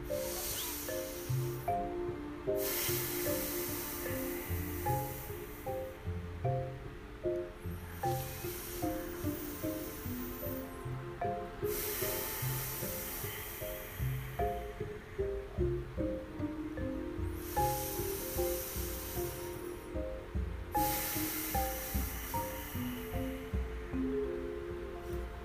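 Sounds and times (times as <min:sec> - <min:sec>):
deep breaths in and out through the nose: 0:00.0 - 0:01.6, 0:02.6 - 0:06.0, 0:11.6 - 0:14.7, 0:17.4 - 0:19.8, 0:20.8 - 0:23.6
quiet steady music: 0:00.0 - 0:25.4.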